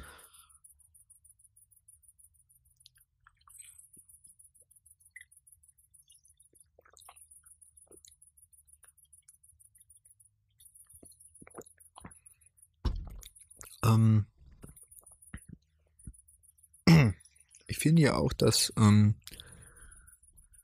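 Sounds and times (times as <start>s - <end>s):
high-pitched crickets chirping in a garden at night: 0.0s - 20.6s
brief louder knock: 12.8s - 13.2s
speech: 13.9s - 14.3s, 17.8s - 19.4s.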